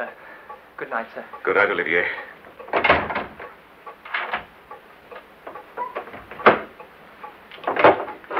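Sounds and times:
speech: 0:00.0 - 0:00.2, 0:00.8 - 0:03.1
lock and bolt being worked with clunks and scrapes: 0:02.3 - 0:06.8, 0:07.5 - 0:08.3
door thudding shut: 0:02.7 - 0:03.5, 0:06.0 - 0:06.7.

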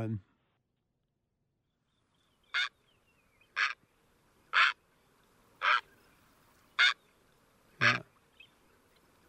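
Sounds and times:
speech: 0:00.0 - 0:00.3
great blue heron giving harsh deep squawks: 0:02.4 - 0:02.8, 0:03.4 - 0:03.8, 0:04.5 - 0:04.8, 0:05.6 - 0:05.9, 0:06.8 - 0:07.0, 0:07.8 - 0:08.5.

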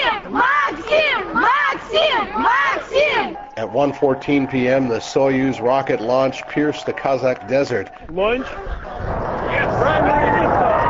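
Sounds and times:
crowd cheering outdoors: 0:00.0 - 0:10.8
speech: 0:03.6 - 0:10.4.

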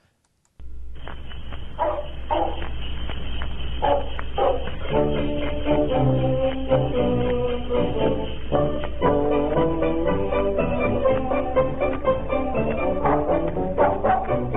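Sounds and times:
sled dogs barking: 0:01.8 - 0:02.9, 0:03.7 - 0:08.8, 0:12.4 - 0:14.5
perky band tune of Eskimo-style music: 0:03.8 - 0:14.5.

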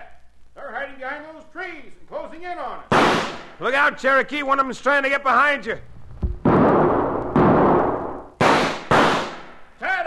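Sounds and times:
speech: 0:02.4 - 0:05.9
carbine rifle shots in a horseback gunfight: 0:02.9 - 0:03.6, 0:06.4 - 0:09.6.

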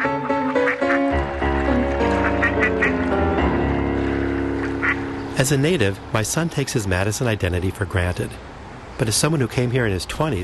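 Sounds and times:
ducks quacking on Lake Mendota in Madison: 0:00.0 - 0:05.6
speech: 0:05.4 - 0:10.4.

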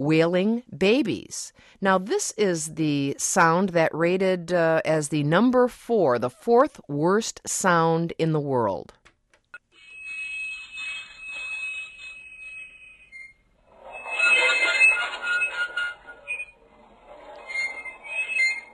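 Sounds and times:
speech: 0:00.0 - 0:09.0
train wheels squealing and scraping on the tracks: 0:13.7 - 0:18.7.

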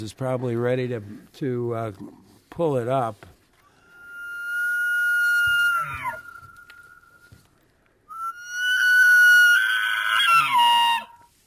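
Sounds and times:
speech: 0:00.0 - 0:03.4
bull elk bugling: 0:03.7 - 0:07.5, 0:08.1 - 0:11.3.

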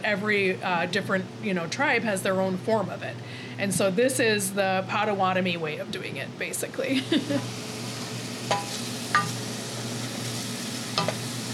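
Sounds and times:
speech: 0:00.0 - 0:07.7
onions sautéing on a stove for soup: 0:07.2 - 0:11.5.

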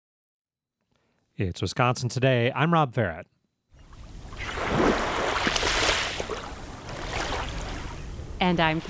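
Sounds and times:
speech: 0:01.4 - 0:03.4, 0:08.4 - 0:08.8
waves washing onto the sandy shore of Lake Michigan at a suburban beach: 0:03.8 - 0:08.8.

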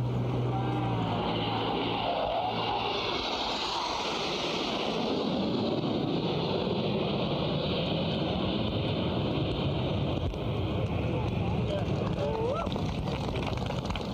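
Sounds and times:
aircraft engine roar overhead: 0:00.0 - 0:14.1
wind: 0:00.0 - 0:14.1.

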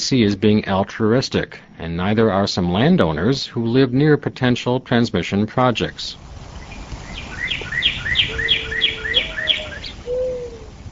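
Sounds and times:
speech: 0:00.0 - 0:06.3
birds singing outdoors on a sunny spring day near Stoughton in Dane County: 0:05.8 - 0:10.8.

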